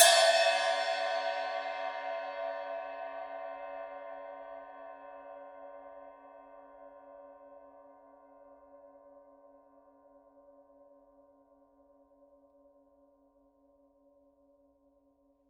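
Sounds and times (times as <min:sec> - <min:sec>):
mega cup chime cymbal edge: 0:00.0 - 0:04.6.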